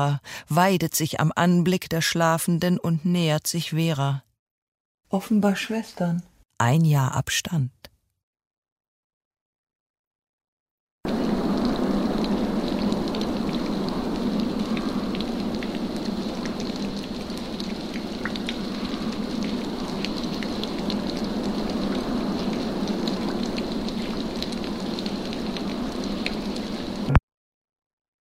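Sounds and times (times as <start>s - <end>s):
speech: 0.0s - 4.3s, 5.1s - 7.8s
rain pattering on a surface: 11.1s - 27.2s.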